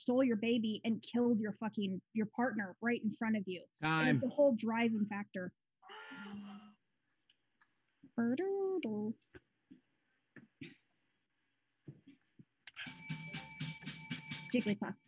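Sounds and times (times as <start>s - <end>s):
speech: 0.0s - 6.7s, 8.1s - 9.4s, 14.5s - 15.0s
bell ringing: 12.8s - 15.0s.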